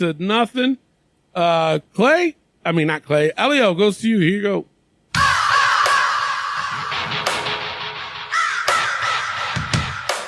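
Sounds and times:
speech: 0.0s - 4.7s
raven cawing: 5.2s - 10.2s.

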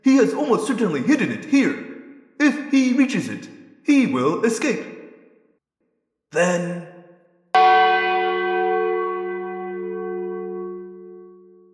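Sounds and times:
speech: 0.2s - 5.0s, 6.3s - 6.8s
church bell tolling from tower: 7.6s - 11.7s.

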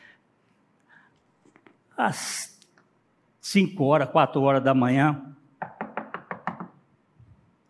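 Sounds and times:
speech: 2.0s - 2.5s, 3.5s - 5.4s
knocking on a wooden door: 5.6s - 6.8s.

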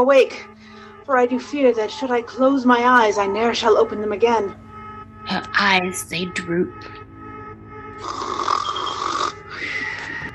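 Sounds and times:
speech: 0.0s - 0.5s, 1.1s - 4.6s, 5.2s - 7.0s
voice imitating snoring with rasping exaggerated snores: 8.0s - 9.6s.

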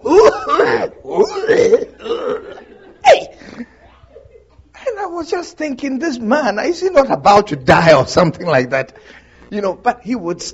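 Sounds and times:
person imitating a smoker's hacking cough: 0.0s - 3.4s
speech: 5.6s - 10.5s.

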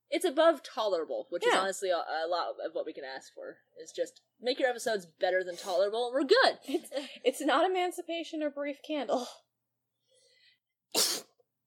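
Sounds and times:
speech: 0.2s - 9.4s
faint breath: 10.0s - 10.7s
forceful person sneezing: 10.9s - 11.4s.

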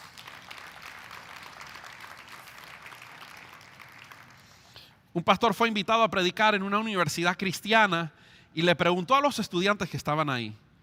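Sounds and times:
crowd applauding in a large room: 0.0s - 4.7s
speech: 5.2s - 10.6s.

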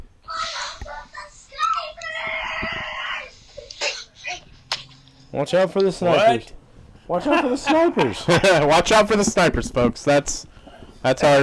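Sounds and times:
child screaming in shrill bursts: 0.3s - 4.4s
laughter: 2.6s - 11.4s
speech: 5.4s - 11.4s.

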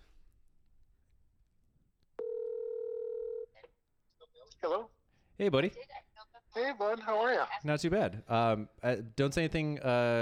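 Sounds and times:
outgoing telephone call ringback tone: 2.2s - 3.5s
speech: 4.4s - 10.2s.

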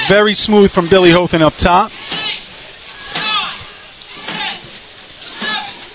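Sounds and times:
water dumped from buckets into a barrel: 0.0s - 5.9s
speech: 0.1s - 2.0s
indistinct voices murmuring: 1.9s - 5.9s.

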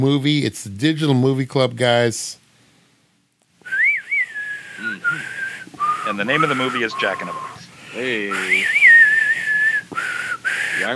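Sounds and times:
speech: 0.0s - 2.4s, 6.1s - 8.8s, 10.8s - 10.9s
person whistling a theme song tune: 3.6s - 7.7s, 8.3s - 10.9s.

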